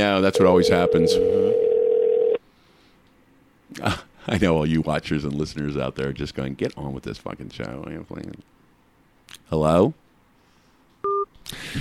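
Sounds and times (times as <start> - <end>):
speech: 0.0 - 1.7, 3.8 - 8.6, 9.5 - 10.0, 11.4 - 11.7
telephone call going to voicemail tone: 0.2 - 2.4.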